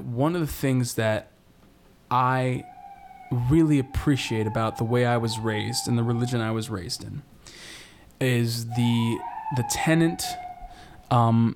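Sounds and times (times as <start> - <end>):
speech: 0.2 - 1.3, 2.1 - 2.7, 3.3 - 7.3, 8.2 - 10.5, 11.1 - 11.5
police car siren wailing: 2.3 - 7.3, 8.5 - 11.1.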